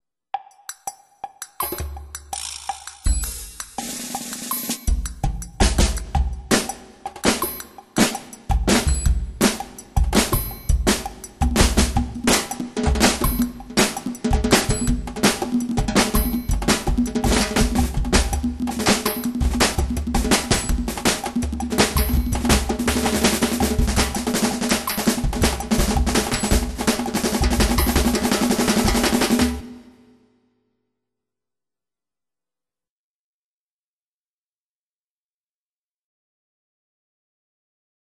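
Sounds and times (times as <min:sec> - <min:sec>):
drum rhythm: 0:00.4 - 0:30.0.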